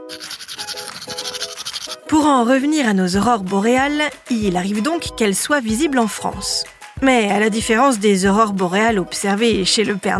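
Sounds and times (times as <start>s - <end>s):
toothbrush scrubbing against teeth: 0.0s - 2.3s
speech: 0.1s - 0.4s, 2.1s - 10.1s.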